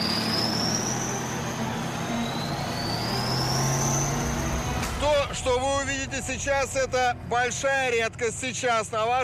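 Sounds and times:
tank engine roaring: 0.0 - 9.2
speech: 5.4 - 9.2.

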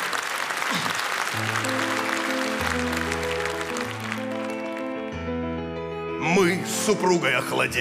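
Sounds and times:
audience applause: 0.0 - 5.2
sustained musical chords: 1.4 - 7.6
speech: 6.9 - 7.7.

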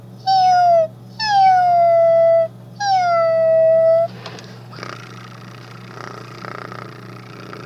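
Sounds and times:
person imitating a cat meowing: 0.2 - 4.1.

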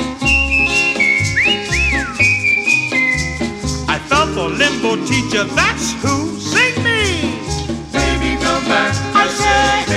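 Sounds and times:
band backing of drums, bass and chords: 0.0 - 9.9
person whistling a bright sliding melody: 0.1 - 3.8
speech: 4.8 - 6.4.

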